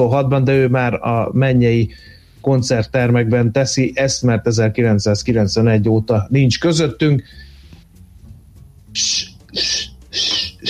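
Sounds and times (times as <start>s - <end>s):
speech: 0.0s - 7.5s, 9.0s - 10.6s
person imitating bird calls: 8.9s - 10.6s.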